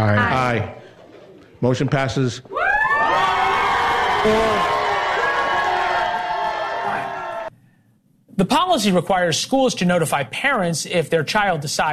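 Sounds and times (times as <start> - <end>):
speech: 0.0 - 0.8, 1.6 - 3.3, 4.2 - 4.8, 8.4 - 11.9
crowd cheering and shouting at a board meeting: 2.6 - 7.5.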